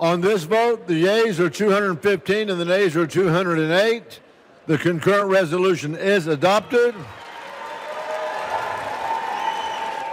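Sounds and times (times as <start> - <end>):
speech: 0.0 - 7.2
large crowd cheering with raised voices after a House vote result: 7.0 - 10.1.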